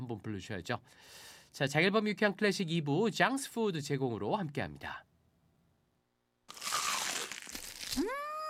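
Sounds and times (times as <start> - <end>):
speech: 0.1 - 5.1
crumble-coated crispy fried chicken being bitten: 6.5 - 8.4.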